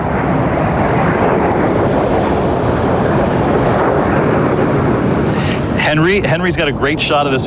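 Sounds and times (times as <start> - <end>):
fighter jets passing overhead up the Hudson River trailing smoke: 0.0 - 7.4
speech: 5.9 - 7.4.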